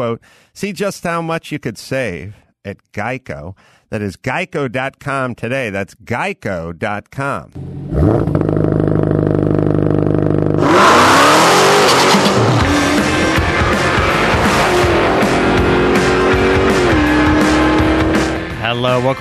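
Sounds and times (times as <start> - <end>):
speech: 0.0 - 8.5, 18.7 - 19.1
car engine idling, revving hard and accelerating: 7.6 - 18.6.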